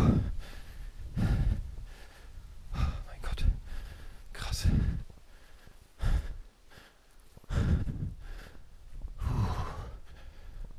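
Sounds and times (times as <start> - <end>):
heavy panting from a hiker after a steep climb in a forest: 0.0 - 10.7.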